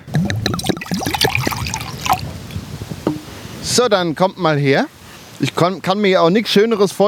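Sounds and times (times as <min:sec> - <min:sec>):
red Spätburgunder wine poured from a small bottle into a tin cup: 0:00.0 - 0:03.3
speech: 0:03.8 - 0:07.0.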